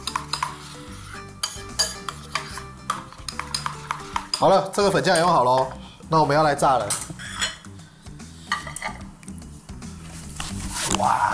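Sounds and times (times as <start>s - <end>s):
metal utensil clinking and scraping against a pan: 0.0s - 5.8s, 6.8s - 7.8s, 8.4s - 9.1s
speech: 4.4s - 7.1s.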